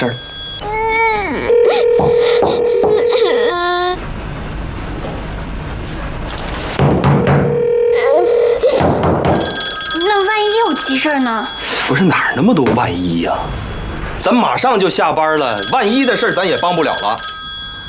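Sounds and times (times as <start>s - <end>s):
speech: 0.0s - 0.3s, 11.1s - 13.6s, 14.2s - 17.4s
telephone ringing unanswered: 0.0s - 0.6s, 1.5s - 3.5s, 7.4s - 8.6s, 9.3s - 14.3s, 15.4s - 17.8s
rustling noise: 4.0s - 7.0s.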